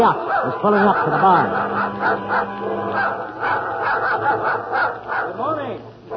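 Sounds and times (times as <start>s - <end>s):
laughter: 0.0s - 5.4s
dog growling: 0.0s - 6.1s
speech: 0.0s - 6.1s.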